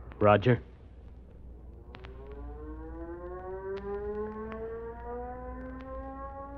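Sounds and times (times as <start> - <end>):
speech: 0.2 - 0.7
airfield crash alarm siren at control tower wailing: 1.8 - 6.5
sharp clicks: 1.9 - 2.4, 3.2 - 6.0.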